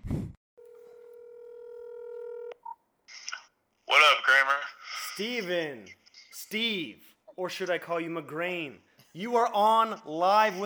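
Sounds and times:
telephone dial tone: 0.6 - 2.8
speech: 4.2 - 10.6.

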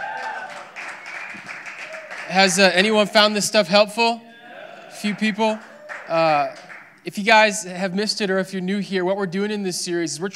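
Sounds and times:
room full of people applauding: 0.0 - 3.4, 4.9 - 7.0
speech: 2.3 - 4.3, 5.0 - 10.3.

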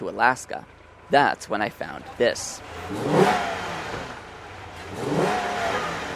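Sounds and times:
speech: 0.0 - 4.1
V8 engine of a Dodge Charger muscle car idling: 0.0 - 6.1
V8 engine of a black Dodge Charger muscle car revving in downtown Pristina: 2.0 - 6.1.

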